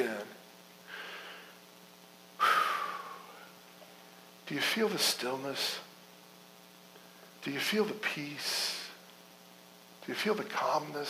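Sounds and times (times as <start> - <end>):
deep breaths taken together: 0.8 - 1.7, 2.4 - 3.6
speech: 4.5 - 5.9, 7.4 - 8.8, 10.1 - 11.0.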